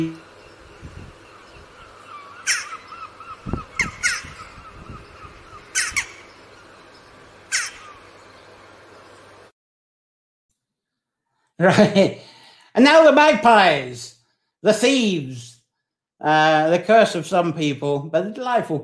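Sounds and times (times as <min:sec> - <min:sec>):
speech: 0:00.0 - 0:00.2, 0:11.6 - 0:12.2, 0:12.8 - 0:15.5, 0:16.2 - 0:18.8
jackdaw calls: 0:00.0 - 0:08.6.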